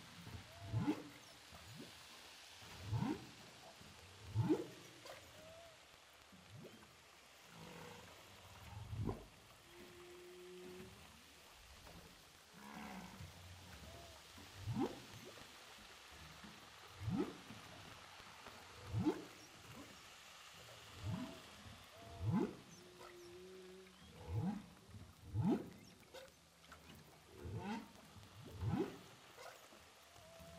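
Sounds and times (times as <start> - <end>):
humpback whale song recorded underwater with a hydrophone off Saint-Paul, Réunion: 2.7 - 6.8, 7.4 - 20.0, 20.9 - 28.0, 28.6 - 30.5.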